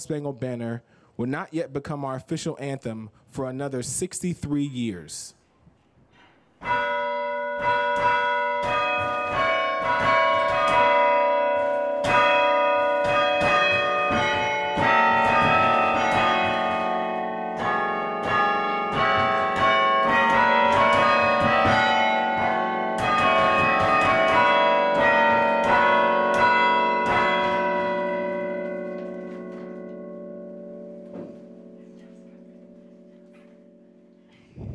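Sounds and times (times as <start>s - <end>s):
speech: 0.0s - 5.4s, 6.6s - 8.2s
university tower bell chimes playing a hymn and a march: 6.6s - 34.3s.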